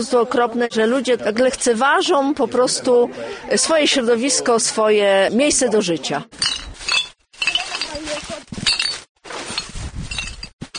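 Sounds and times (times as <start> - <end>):
speech: 0.0 - 6.7
glass bottles clinking in a rubbish bag of collected litter: 6.4 - 10.7.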